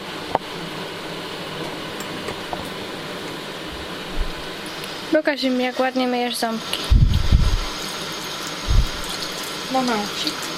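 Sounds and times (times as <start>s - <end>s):
washing machine running a wash cycle: 0.0s - 10.5s
speech: 5.2s - 6.9s, 9.7s - 10.5s
low thumps: 6.9s - 7.7s, 8.7s - 9.1s.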